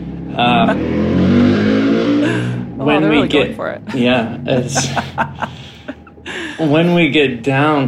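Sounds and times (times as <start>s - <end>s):
motorcycle roaring past: 0.0s - 6.0s
speech: 0.4s - 1.1s, 2.9s - 5.6s, 6.6s - 7.8s
laughter: 3.2s - 7.0s.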